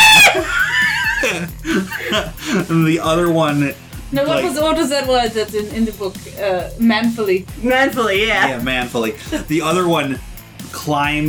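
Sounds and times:
person screaming high-pitched: 0:00.0 - 0:00.5
laughter: 0:00.0 - 0:03.4, 0:07.7 - 0:10.0
speech: 0:01.4 - 0:11.2.

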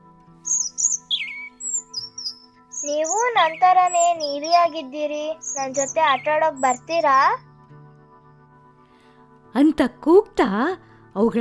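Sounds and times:
blue birds chirping and trilling in a tree: 0:00.4 - 0:10.4
speech: 0:02.8 - 0:07.5, 0:09.6 - 0:11.3.

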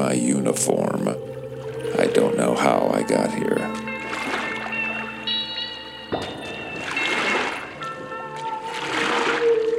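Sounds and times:
speech: 0:00.0 - 0:03.9
sustained tonal hum: 0:00.0 - 0:09.7
rowing paddles splashing through water: 0:03.7 - 0:05.4, 0:06.2 - 0:09.7.

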